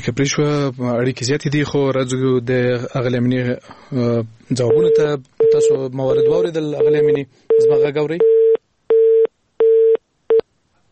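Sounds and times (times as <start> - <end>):
speech: 0.0 - 8.4
telephone busy tone beeps after a dropped call: 4.7 - 10.4.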